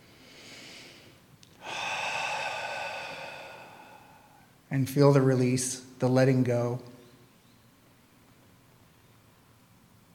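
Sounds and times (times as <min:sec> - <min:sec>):
deep cleansing breath in and out during a guided meditation: 0:00.0 - 0:04.6
speech: 0:04.7 - 0:06.9.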